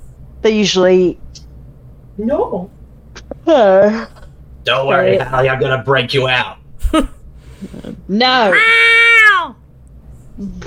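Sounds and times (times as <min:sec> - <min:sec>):
speech: 0:00.4 - 0:01.3, 0:02.2 - 0:02.8, 0:03.4 - 0:09.0, 0:10.4 - 0:10.6
cat meowing in a film scene: 0:08.4 - 0:09.6.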